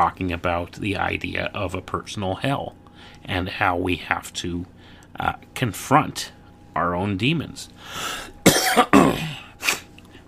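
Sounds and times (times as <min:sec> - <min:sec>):
speech: 0:00.0 - 0:09.4
throat clearing: 0:08.5 - 0:09.9.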